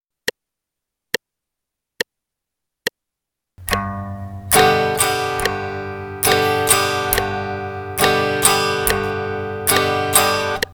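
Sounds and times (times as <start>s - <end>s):
G bass note on guitar: 3.6s - 10.7s.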